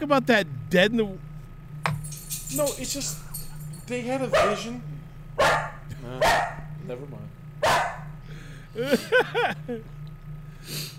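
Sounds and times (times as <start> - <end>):
speech: 0.0 - 1.3, 2.5 - 3.3, 3.9 - 7.8, 8.7 - 10.0, 10.6 - 10.9
steady low hum: 0.0 - 10.9
sitting dog barking high-pitched: 4.3 - 4.8, 5.4 - 6.8, 7.6 - 8.2
laughter: 8.5 - 10.0.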